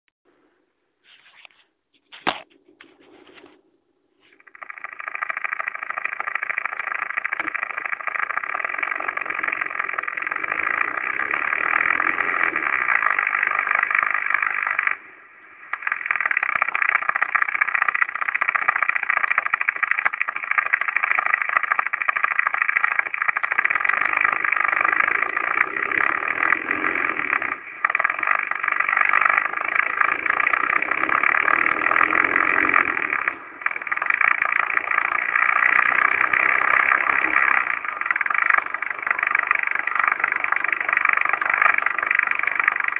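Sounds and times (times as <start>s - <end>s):
diesel engine noise: 4.4s - 42.9s.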